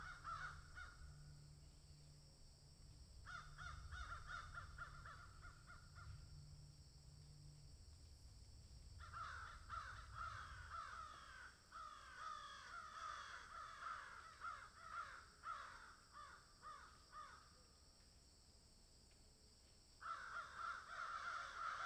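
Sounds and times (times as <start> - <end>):
several crows cawing in a field: 0.0 - 1.6, 3.2 - 6.4, 9.0 - 17.5, 20.0 - 21.8
low hum: 0.0 - 11.0.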